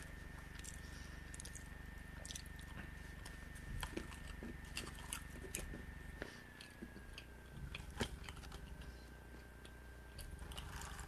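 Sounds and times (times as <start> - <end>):
crunchy nut chewing during a death nut challenge: 0.0 - 11.0
steady hum: 0.0 - 11.0.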